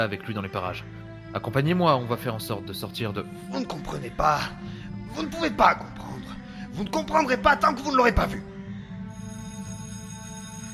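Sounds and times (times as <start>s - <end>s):
speech: 0.0s - 8.5s
bell ringing with bright metallic tone: 9.1s - 10.7s.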